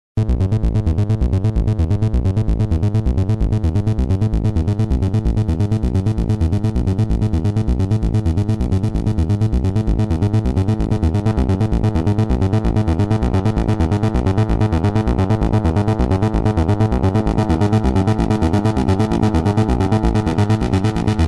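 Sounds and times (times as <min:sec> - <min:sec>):
analog synthesizer sequence: 0:00.2 - 0:21.2.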